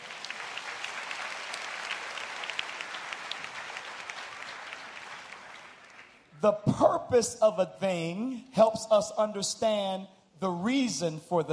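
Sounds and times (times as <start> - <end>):
audience applauding: 0.0 - 6.3
speech: 6.4 - 11.5.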